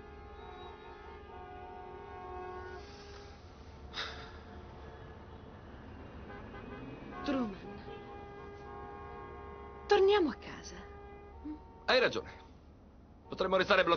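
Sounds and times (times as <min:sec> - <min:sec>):
car horns honking in a traffic jam: 0:00.0 - 0:12.4
low rumble of idling traffic in a traffic jam: 0:00.0 - 0:13.9
speech: 0:07.3 - 0:07.6, 0:10.1 - 0:10.8, 0:11.9 - 0:12.4, 0:13.4 - 0:13.9.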